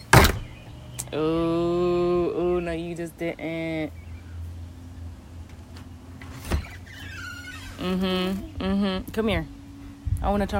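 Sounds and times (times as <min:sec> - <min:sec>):
steady humming tone: 0:00.0 - 0:10.5
door shutting with a thud: 0:00.1 - 0:00.6
speech: 0:01.1 - 0:01.8, 0:02.7 - 0:04.1, 0:07.8 - 0:09.6, 0:10.2 - 0:10.5.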